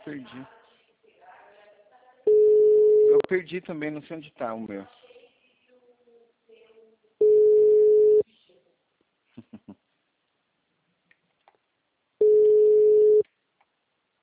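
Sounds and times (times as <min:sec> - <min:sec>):
speech: 0:00.1 - 0:00.6, 0:03.2 - 0:05.0
outgoing telephone call ringing tone: 0:02.3 - 0:03.2, 0:07.2 - 0:08.2, 0:12.2 - 0:13.2.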